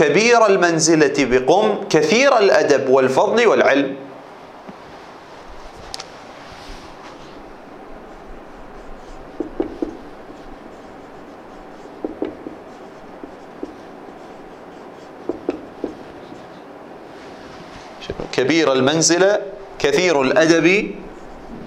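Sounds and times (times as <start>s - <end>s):
speech: 0.0s - 4.1s, 18.4s - 21.0s
pen or pencil scratching while handwriting: 8.0s - 16.7s, 20.4s - 21.6s.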